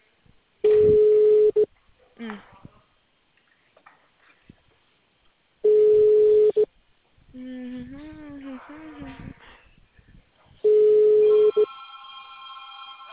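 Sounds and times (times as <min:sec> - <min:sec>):
faint scattered noises: 0:00.0 - 0:13.1
telephone busy tone after a dropped call: 0:00.6 - 0:01.7, 0:05.6 - 0:06.7, 0:10.6 - 0:12.7.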